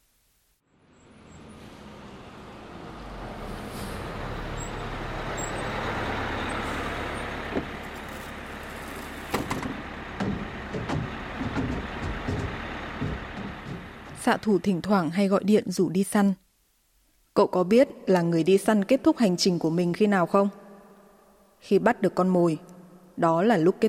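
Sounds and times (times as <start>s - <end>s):
village bus engine rumbling: 0.7s - 15.1s
bus air brakes releasing: 3.4s - 7.4s
sharp clunks and knocks: 7.5s - 7.8s, 9.2s - 14.3s
speech: 14.3s - 16.4s, 17.4s - 20.6s, 21.6s - 23.8s.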